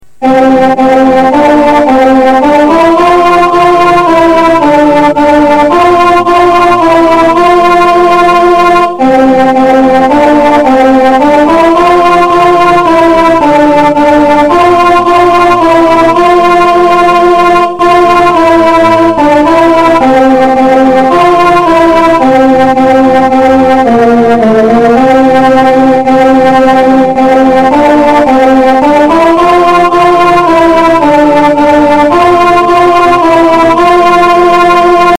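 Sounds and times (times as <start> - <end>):
Christmas carol music with alto part: 0.1 - 35.1.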